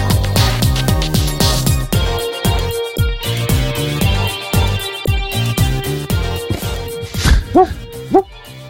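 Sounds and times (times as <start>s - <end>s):
upbeat music with thumping beat: 0.0s - 8.6s
simulated yippy dog barking sound effect: 7.4s - 8.4s.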